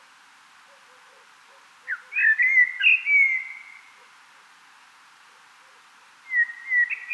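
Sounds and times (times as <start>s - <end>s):
common blackbird Turdus merula singing: 1.9s - 3.8s, 6.3s - 7.1s.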